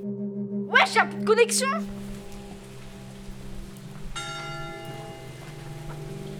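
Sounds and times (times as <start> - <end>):
speech: 0.8 - 2.0
freezing rain hissing: 0.8 - 6.3
church bell ringing: 1.9 - 6.3.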